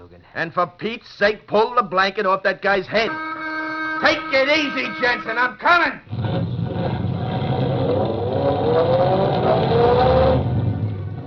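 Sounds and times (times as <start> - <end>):
speech: 0.4 - 3.3, 4.0 - 6.1
car engine accelerating as the driver steps on the gas: 6.1 - 11.2.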